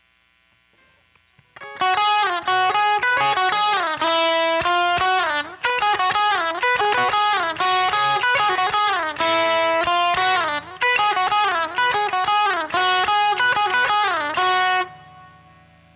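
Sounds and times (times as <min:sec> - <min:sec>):
instrumental solo: 0:01.7 - 0:15.3.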